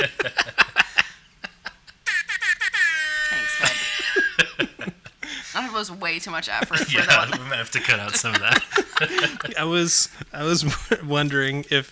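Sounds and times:
choppy laughter-like bursts: 0:00.0 - 0:11.1
air horn sound effect blasts: 0:03.2 - 0:04.2
speech: 0:05.8 - 0:11.9.

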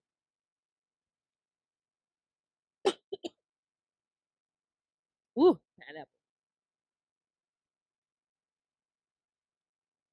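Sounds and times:
harsh coughing: 0:02.9 - 0:03.4
speech: 0:05.4 - 0:06.2.

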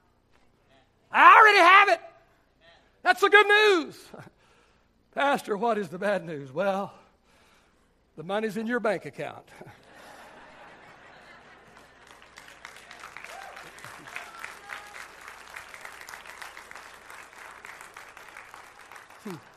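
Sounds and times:
speech: 0:03.0 - 0:04.3, 0:05.2 - 0:07.0, 0:08.2 - 0:09.8, 0:19.3 - 0:19.5
people chuckling: 0:09.6 - 0:12.2
large audience clapping: 0:11.3 - 0:19.5.

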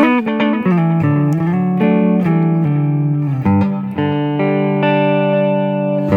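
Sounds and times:
loud sustained instrument playing a run of notes through a delayed delay effect: 0:00.0 - 0:06.1.

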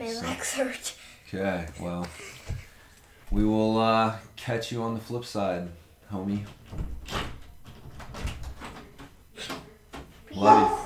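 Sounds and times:
speech: 0:00.1 - 0:02.6, 0:03.3 - 0:07.3, 0:10.4 - 0:10.8
door opening with scraping and rattling: 0:06.5 - 0:10.1.

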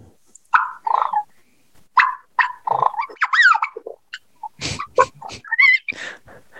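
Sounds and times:
handheld turkey call making soft yelps: 0:00.5 - 0:01.3, 0:02.0 - 0:06.0.

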